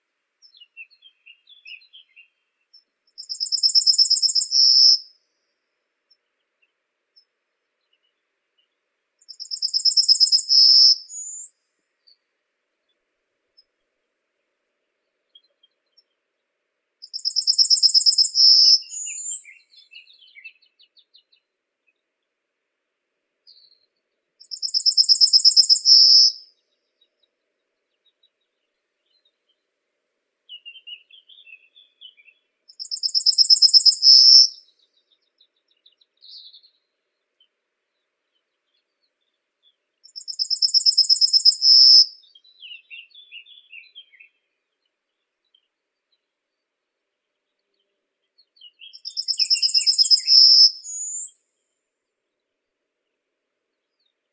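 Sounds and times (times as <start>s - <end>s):
yellowhammer Emberiza citrinella: 0.4s - 5.1s, 7.8s - 12.2s, 17.0s - 22.0s, 24.4s - 29.6s, 30.5s - 46.3s, 47.4s - 51.5s.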